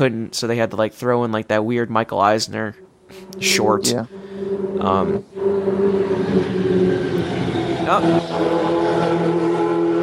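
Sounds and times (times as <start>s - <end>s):
speech: 0.0s - 6.6s, 7.9s - 8.2s
motorcycle engine droning outside as the bike passes: 2.2s - 10.0s.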